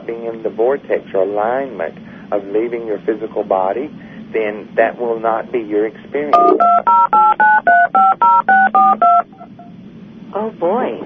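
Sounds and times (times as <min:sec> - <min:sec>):
speech: 0:00.0 - 0:09.6, 0:10.3 - 0:11.0
faint noise: 0:00.0 - 0:11.0
touch-tone telephone keypad beeps: 0:06.3 - 0:09.4.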